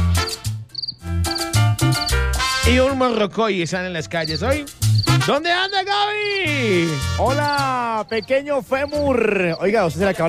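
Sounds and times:
cricket chirping: 0:00.2 - 0:02.2, 0:04.2 - 0:06.5, 0:07.4 - 0:09.7
speech: 0:02.0 - 0:10.2.

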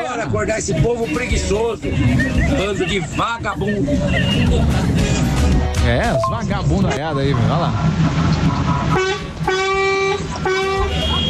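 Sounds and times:
voices chattering: 0:00.0 - 0:08.0
busy street rumble: 0:00.1 - 0:11.2
speech: 0:00.2 - 0:09.2
car horns honking: 0:06.1 - 0:11.2.

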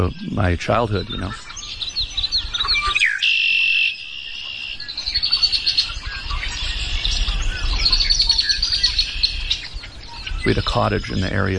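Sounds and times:
speech: 0:00.0 - 0:01.5, 0:10.4 - 0:11.5
faint low rumble of ambient noise: 0:00.0 - 0:02.7, 0:06.0 - 0:11.5
wild birds singing outdoors: 0:00.0 - 0:11.5.

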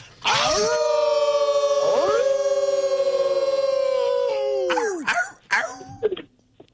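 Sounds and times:
man howling like a wolf: 0:00.2 - 0:05.1.

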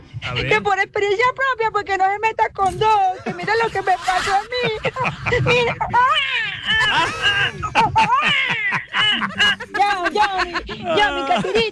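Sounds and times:
speech: 0:00.2 - 0:11.7
adults talking: 0:00.3 - 0:11.7
laughter: 0:03.1 - 0:11.7
baby crying: 0:06.0 - 0:07.6.

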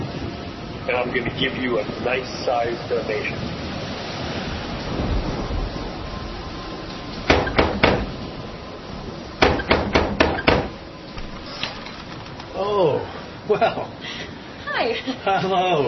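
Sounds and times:
steady hiss: 0:00.0 - 0:15.8
speech: 0:00.9 - 0:03.6, 0:13.5 - 0:14.2, 0:14.8 - 0:15.8
sharp knocks on a door: 0:07.3 - 0:08.1, 0:09.4 - 0:10.8.

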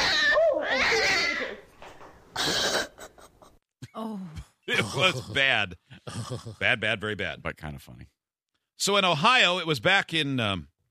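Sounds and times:
cat growling and yowling warning: 0:00.0 - 0:01.4
speech: 0:04.8 - 0:08.2, 0:08.8 - 0:10.7.

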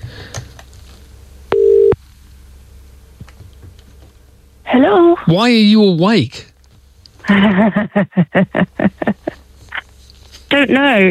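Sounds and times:
outgoing phone call ringing tone: 0:01.5 - 0:02.0
speech: 0:04.7 - 0:06.5, 0:07.3 - 0:09.4, 0:10.5 - 0:11.0
laughter: 0:07.2 - 0:09.4.

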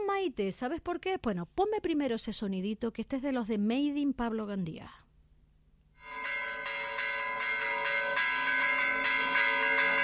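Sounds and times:
speech: 0:00.2 - 0:05.0
finer-toned church bells of the Santísimo Cristo de La Laguna ringing: 0:06.0 - 0:10.0.

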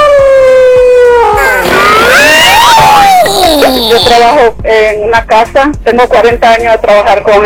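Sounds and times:
person howling and yelping like an excited dog: 0:00.1 - 0:04.2
speech: 0:04.4 - 0:07.4.

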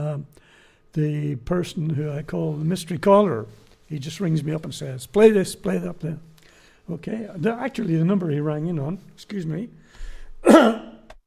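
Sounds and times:
speech: 0:00.2 - 0:06.3, 0:06.9 - 0:10.9
rough throaty gravelly cough: 0:10.4 - 0:11.1.

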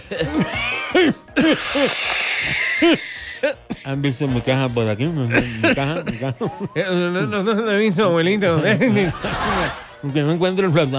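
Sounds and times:
old man coughing hard: 0:00.0 - 0:03.9, 0:05.3 - 0:06.4
speech: 0:00.1 - 0:10.9
laughter: 0:05.3 - 0:07.7, 0:08.4 - 0:10.0.

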